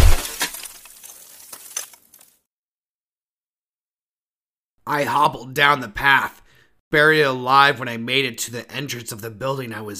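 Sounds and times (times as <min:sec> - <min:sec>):
boot stomping down on an ice-encased skull: 0:00.0 - 0:02.0
loud crunching shatter of ice: 0:00.0 - 0:02.4
speech: 0:04.9 - 0:09.9.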